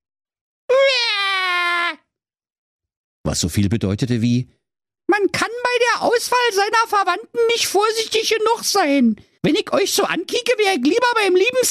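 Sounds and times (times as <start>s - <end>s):
voice imitating baby babbling as a whiny wail: 0.7s - 2.1s
speech: 3.3s - 11.7s.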